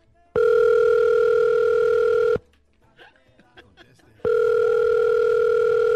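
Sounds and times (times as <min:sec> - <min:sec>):
ringback tone of an outgoing telephone call: 0:00.4 - 0:02.4, 0:04.3 - 0:05.9
laughter: 0:02.8 - 0:04.2.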